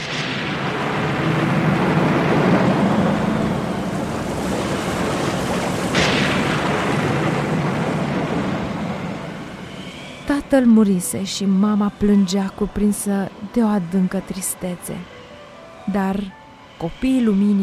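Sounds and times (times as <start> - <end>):
sharp crack in a storm: 0.0 - 10.2
roaring sea with surging water: 0.0 - 15.4
storm rain: 0.0 - 16.8
storm wind: 0.0 - 17.6
speech: 10.5 - 15.2, 15.9 - 17.6.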